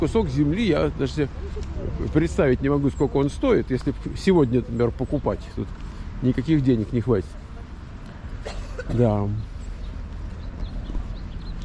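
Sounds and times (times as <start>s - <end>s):
speech: 0.0s - 7.4s, 8.9s - 9.5s
small birds singing outdoors: 0.0s - 8.4s, 9.0s - 11.6s.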